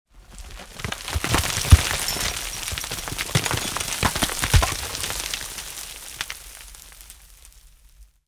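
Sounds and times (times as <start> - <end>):
rockslide: 0.1 - 8.2.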